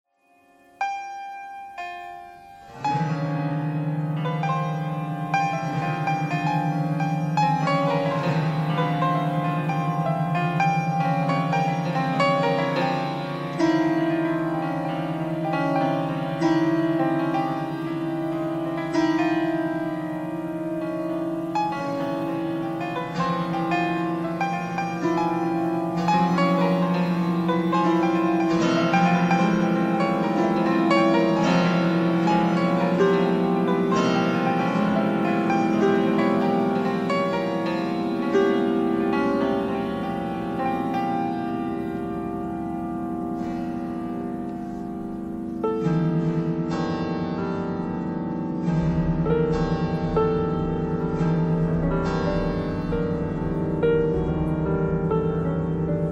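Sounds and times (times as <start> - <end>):
piano string noise: 0.2 - 56.0.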